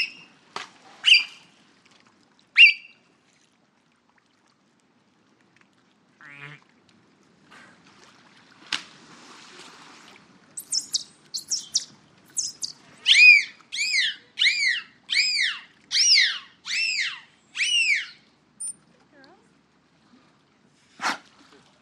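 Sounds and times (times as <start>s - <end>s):
dolphin whistles: 0.0s - 0.3s, 1.0s - 1.5s, 2.6s - 3.0s, 10.6s - 18.8s.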